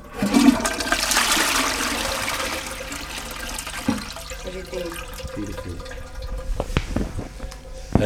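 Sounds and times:
toilet flushing pomegranate seeds: 0:00.0 - 0:08.0
toilet tank gurgling, trickling refill: 0:00.0 - 0:08.0
small knocks: 0:05.1 - 0:08.0.

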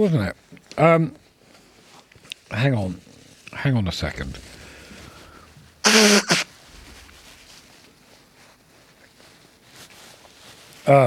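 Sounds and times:
speech: 0:00.0 - 0:01.2, 0:02.5 - 0:04.5, 0:05.9 - 0:06.4, 0:10.9 - 0:11.0
person clearing throat with a rough forceful rasp: 0:05.9 - 0:06.4
person coughing: 0:05.9 - 0:06.4.

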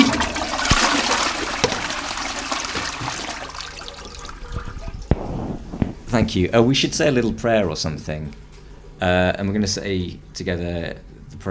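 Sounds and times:
toilet flushing: 0:00.0 - 0:05.1
speech: 0:06.2 - 0:08.4, 0:09.0 - 0:11.4.

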